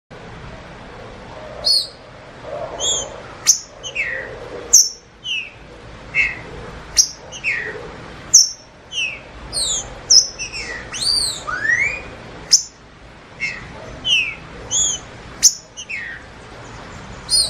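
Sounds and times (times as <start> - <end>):
faint background noise: 0.1 - 17.4
green-winged saltator song of sharp descending whistles: 1.6 - 2.0, 2.8 - 12.8, 13.4 - 16.3, 17.3 - 17.4.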